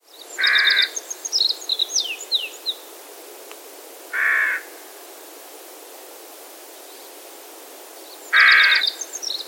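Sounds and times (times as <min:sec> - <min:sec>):
small birds twittering: 0:00.0 - 0:02.9, 0:07.9 - 0:09.4
Carrion Crow Corvus corone cawing: 0:00.4 - 0:00.9, 0:04.1 - 0:04.8, 0:08.4 - 0:09.0.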